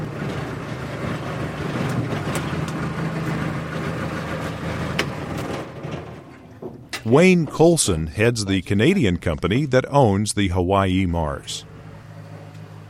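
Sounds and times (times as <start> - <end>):
small skiff motorboat engine droning: 0.0 - 6.5, 11.2 - 12.8
speech: 7.1 - 11.7.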